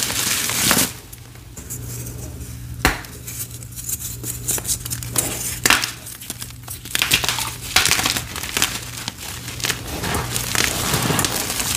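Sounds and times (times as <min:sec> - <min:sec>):
low steady hum: 0:00.0 - 0:11.7
cornstarch being pressed and crumbled: 0:03.1 - 0:11.7.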